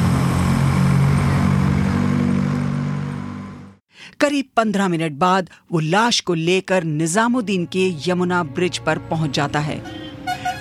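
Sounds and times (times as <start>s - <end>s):
car engine revving as the car speeds away: 0.0s - 3.8s
speech: 4.2s - 10.0s.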